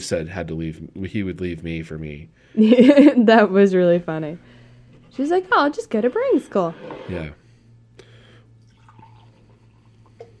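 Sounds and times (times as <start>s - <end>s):
speech: 0.0s - 7.4s
faint low hum: 0.0s - 10.3s
beer pouring from a can: 8.6s - 10.3s.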